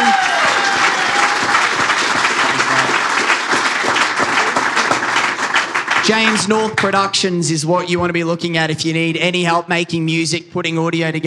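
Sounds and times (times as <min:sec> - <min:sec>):
large crowd applauding: 0:00.0 - 0:07.1
speech: 0:06.1 - 0:11.2.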